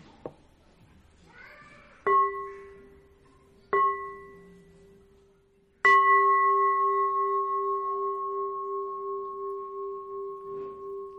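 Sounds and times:
village communal-house shrine bell struck: 2.1 - 3.1, 3.7 - 4.7, 5.8 - 11.1.

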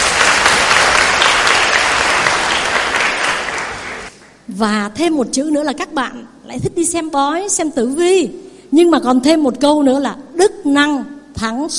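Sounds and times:
audience applause: 0.0 - 4.3
speech: 4.6 - 11.7.

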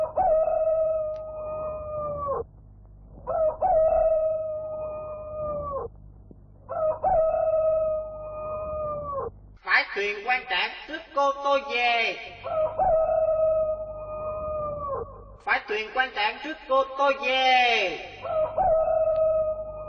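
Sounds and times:
rooster crowing: 0.0 - 2.4, 3.3 - 5.9, 6.7 - 9.3, 12.4 - 15.2, 18.2 - 19.8
speech: 10.4 - 12.3, 15.8 - 18.1.

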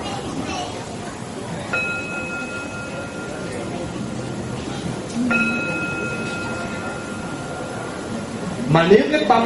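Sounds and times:
soft noisy room background: 0.0 - 9.4
Buddhist temple bell struck and ringing: 1.6 - 8.6
speech: 8.7 - 9.4.

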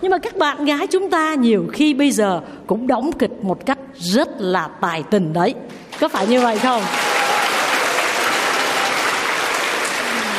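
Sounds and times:
speech: 0.0 - 7.0
young men applauding in an audience: 6.1 - 10.3.

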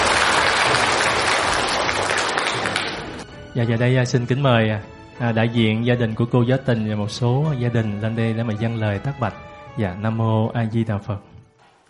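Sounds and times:
large audience applause: 0.0 - 3.2
speech: 3.6 - 11.3.

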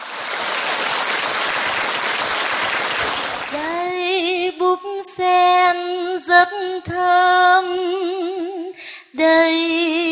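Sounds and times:
audience applause: 0.0 - 3.8
speech: 4.7 - 10.1.

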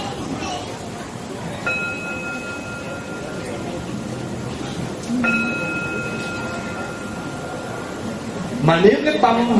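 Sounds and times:
steady noise: 0.0 - 9.5
Buddhist temple bell being struck: 1.6 - 8.6
speech: 8.7 - 9.5.

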